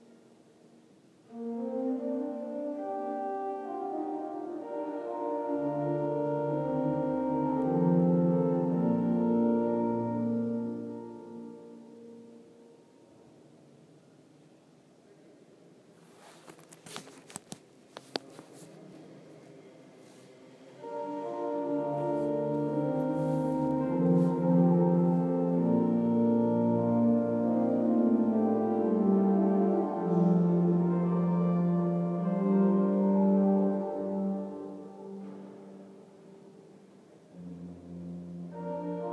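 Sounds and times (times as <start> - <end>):
hautbois stop of the organ in the Martinikerk in Groningen: 1.3 - 12.4, 20.8 - 36.2, 37.3 - 39.1.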